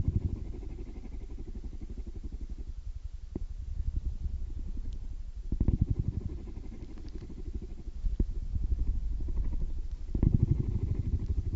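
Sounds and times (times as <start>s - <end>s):
cat purring: 0.0s - 11.5s
faint clicks and soft ticks: 4.7s - 8.3s, 9.2s - 11.5s.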